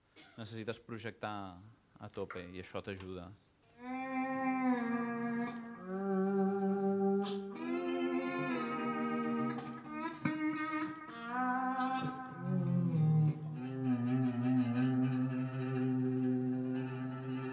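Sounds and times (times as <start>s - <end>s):
speech: 0.4s - 3.9s
electric guitar played through an effects pedal with heavy sustain: 4.1s - 17.5s.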